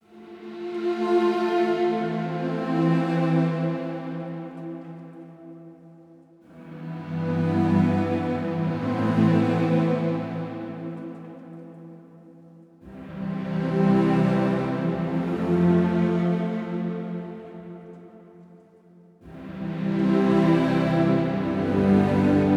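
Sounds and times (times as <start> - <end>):
ambient string melody loop in A minor: 0.0 - 22.5.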